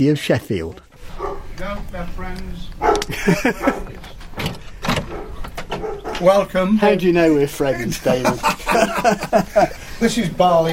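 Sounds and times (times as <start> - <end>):
speech: 0.0 - 4.6, 6.2 - 10.7
dog barking: 1.0 - 1.6, 2.8 - 4.0, 5.0 - 6.3
laughter: 3.0 - 4.2, 7.5 - 10.7.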